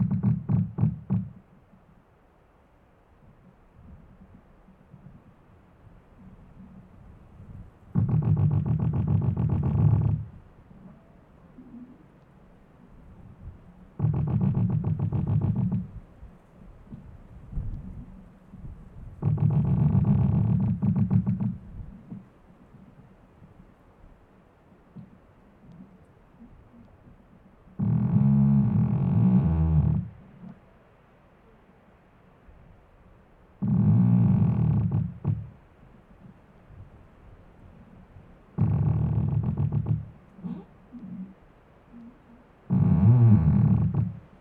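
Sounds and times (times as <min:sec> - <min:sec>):
tree creaking and groaning: 0:00.0 - 0:01.5, 0:06.2 - 0:11.0, 0:13.3 - 0:16.2, 0:16.9 - 0:23.0, 0:25.0 - 0:30.6, 0:33.6 - 0:35.6, 0:37.7 - 0:44.3
faint low rumble: 0:00.0 - 0:44.3.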